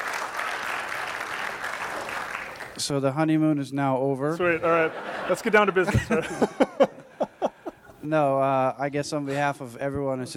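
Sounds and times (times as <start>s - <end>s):
church audience applause: 0.0s - 2.8s
speech: 2.8s - 6.8s, 8.0s - 10.3s
laughter: 4.4s - 8.0s.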